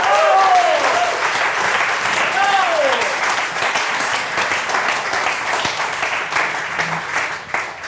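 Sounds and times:
cheers and whoops: 0:00.0 - 0:01.3, 0:02.3 - 0:03.2
audience applause: 0:00.0 - 0:07.8.

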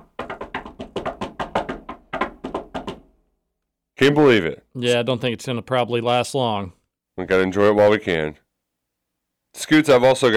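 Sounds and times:
knocking on wood: 0:00.0 - 0:03.1
speech: 0:04.0 - 0:08.4, 0:09.6 - 0:10.3.

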